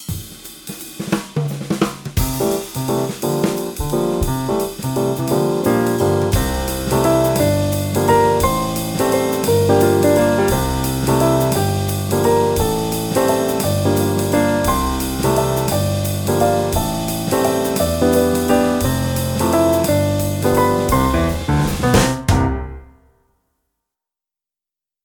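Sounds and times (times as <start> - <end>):
jazz waltz: 2.2 - 22.6.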